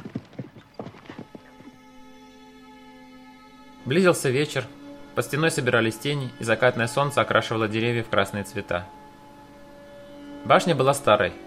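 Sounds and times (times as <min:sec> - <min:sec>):
horse hooves galloping away: 0:00.0 - 0:01.8
steady low hum: 0:00.6 - 0:11.4
speech: 0:03.9 - 0:09.0, 0:10.4 - 0:11.4.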